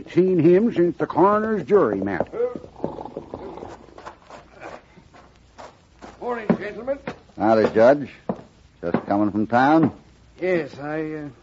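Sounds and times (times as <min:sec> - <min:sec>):
speech: 0:00.0 - 0:02.5, 0:06.2 - 0:08.2, 0:08.8 - 0:11.4
faint hiss: 0:00.0 - 0:11.4
hooves of a ridden paint horse clip-clopping at a walk: 0:01.3 - 0:09.3.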